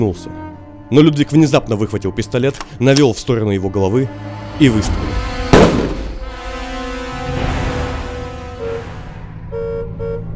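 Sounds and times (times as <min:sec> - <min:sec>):
speech: 0:00.0 - 0:05.3
car horn honking on a heavy motor vehicle driven through a crowd: 0:05.1 - 0:10.3.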